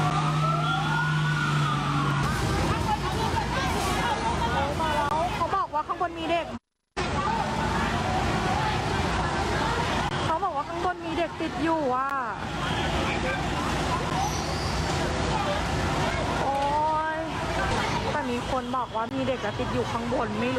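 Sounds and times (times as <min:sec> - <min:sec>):
fire engine siren wailing at a hospital building fire in Samut Sakhon, Thailand: 0:00.0 - 0:03.8
people talking and shouting as patients are moved out: 0:00.0 - 0:20.5
speech: 0:11.6 - 0:12.5, 0:18.7 - 0:20.5.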